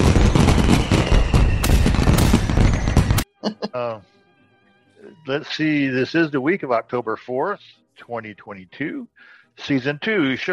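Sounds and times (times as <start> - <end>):
firework explosions: 0.0 - 3.2
speech: 5.1 - 10.5.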